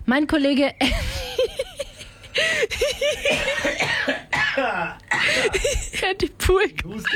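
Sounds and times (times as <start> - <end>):
speech: 0.1 - 1.2, 2.7 - 7.1
man coughing in harsh throaty fits: 3.1 - 6.1.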